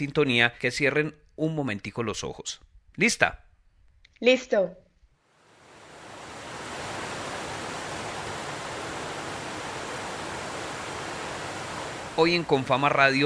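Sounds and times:
speech: 0.0s - 3.5s, 4.2s - 4.8s, 12.2s - 13.2s
flowing river water: 5.3s - 13.2s.

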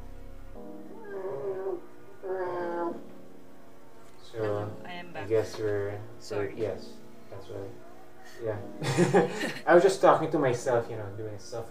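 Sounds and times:
cat wailing outside window: 0.9s - 3.1s
speech: 5.3s - 7.8s, 8.4s - 11.6s
laughter: 8.8s - 9.9s.

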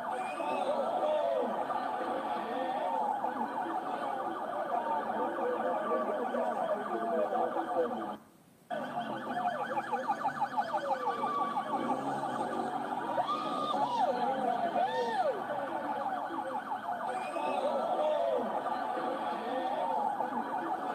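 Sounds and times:
large crowd applause: 0.0s - 7.8s, 8.7s - 20.9s
laughter: 0.0s - 8.1s, 8.8s - 20.9s.

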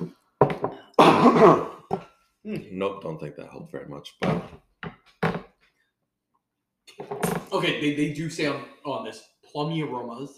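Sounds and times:
person coughing: 1.0s - 1.9s
speech: 1.2s - 4.7s, 7.5s - 10.3s.

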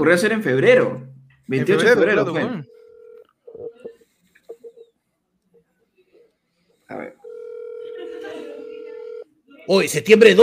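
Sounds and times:
speech: 0.0s - 2.7s, 9.7s - 10.4s
telephone dial tone: 2.7s - 4.8s, 7.2s - 9.2s
telephone number being dialed with beeps and clicks: 2.7s - 4.9s, 8.6s - 9.2s.

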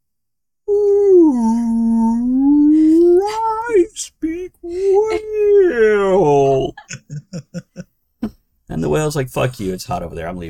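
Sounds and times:
voice imitating a brachiosaurus cry: 0.7s - 6.9s
speech: 8.9s - 10.4s.

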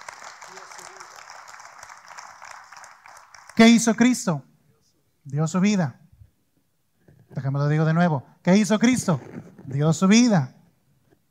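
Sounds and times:
church audience applauding during a sermon: 0.0s - 4.2s
speech: 3.6s - 4.5s, 5.3s - 6.0s, 7.5s - 10.6s.

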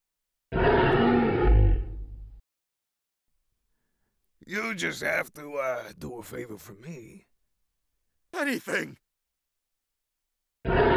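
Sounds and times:
lion roaring: 0.5s - 2.3s, 10.6s - 10.9s
speech: 4.5s - 7.3s, 8.3s - 9.0s.

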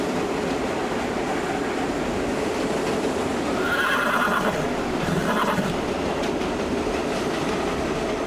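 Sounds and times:
rumble and clatter of a train pulling in to the platform: 0.0s - 8.2s
horse whinnying on a train station platform in Australia: 3.6s - 6.0s.

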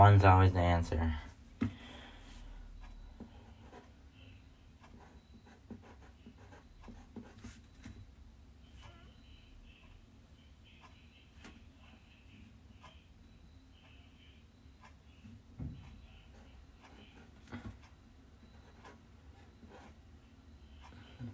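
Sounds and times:
speech: 0.0s - 1.8s
pen writing on paper: 3.4s - 3.9s, 4.9s - 7.7s, 18.6s - 20.0s.

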